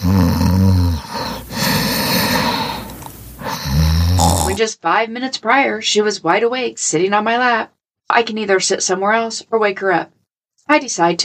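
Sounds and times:
cat raspy wheezy breaths: 0.0s - 4.6s
cat snoring: 0.0s - 4.6s
speech: 4.6s - 11.2s.

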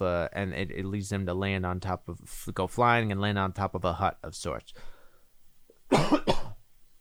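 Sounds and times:
speech: 0.0s - 4.9s
harsh coughs: 5.9s - 6.6s.

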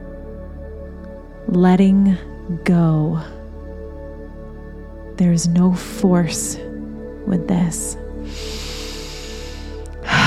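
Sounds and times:
speech: 1.5s - 3.4s, 5.2s - 6.7s, 7.3s - 8.6s
slow deep breath in and out: 8.2s - 10.2s.

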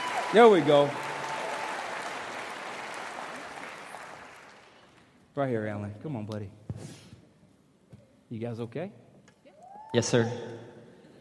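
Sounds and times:
church congregation applause: 0.0s - 5.0s
speech: 0.3s - 1.0s, 5.4s - 7.0s, 8.3s - 9.0s, 9.9s - 10.7s.

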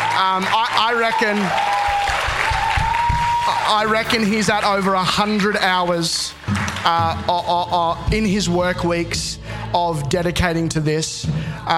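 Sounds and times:
audience applause: 0.0s - 7.2s
speech: 0.2s - 1.8s, 3.7s - 11.7s.

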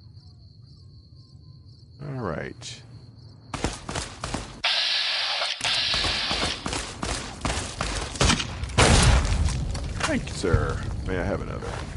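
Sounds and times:
speech: 2.0s - 2.9s, 10.1s - 11.9s
video game gunfire from an enemy gunslinger: 3.5s - 9.3s.

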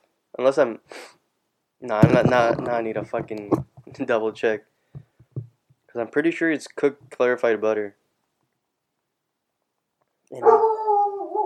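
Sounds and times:
speech: 0.4s - 1.2s, 1.8s - 4.7s, 6.0s - 8.0s, 10.3s - 10.7s
dog howling: 10.4s - 11.4s.

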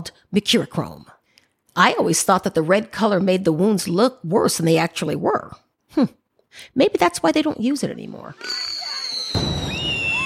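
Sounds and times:
speech: 0.0s - 1.2s, 1.8s - 8.7s
dense crackling rumble of fireworks: 8.5s - 10.2s
loud firework bang: 9.2s - 10.2s.

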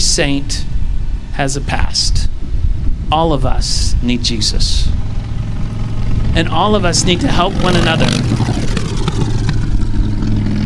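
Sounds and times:
speech: 0.2s - 0.7s, 1.4s - 2.3s, 3.1s - 5.0s, 6.4s - 8.7s
loud motorcycle engine revving as it passes: 4.8s - 10.6s.

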